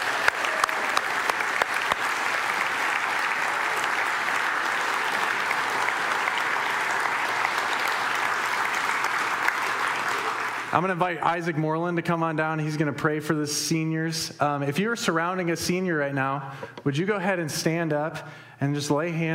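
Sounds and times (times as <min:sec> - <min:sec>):
audience applauding for graduating seniors: 0:00.0 - 0:11.3
speech: 0:10.8 - 0:19.3.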